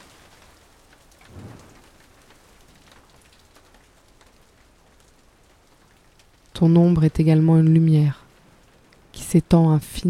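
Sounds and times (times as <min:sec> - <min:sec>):
steady rain falling: 0:00.0 - 0:10.0
low rumble: 0:01.3 - 0:02.3
speech: 0:06.6 - 0:08.2, 0:09.3 - 0:10.0.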